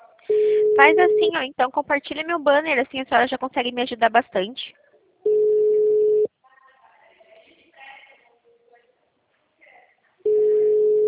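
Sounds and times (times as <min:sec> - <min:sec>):
faint scattered sounds: 0:00.0 - 0:11.0
telephone call-progress tone on an unanswered call: 0:00.3 - 0:01.5, 0:05.3 - 0:06.3, 0:10.3 - 0:11.0
speech: 0:00.3 - 0:05.4.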